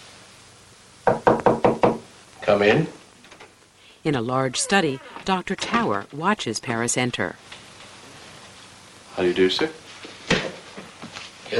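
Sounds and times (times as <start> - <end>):
knocking on a door at the end of a shadowy hallway: 1.0 - 2.1
speech: 2.5 - 3.0, 4.0 - 7.6, 9.2 - 9.8.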